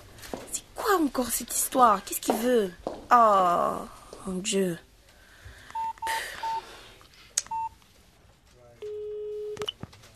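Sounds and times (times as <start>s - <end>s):
faint noise: 0.0s - 10.1s
speech: 1.0s - 4.9s
mobile phone keypad dialing tones: 5.8s - 6.6s, 7.5s - 7.7s.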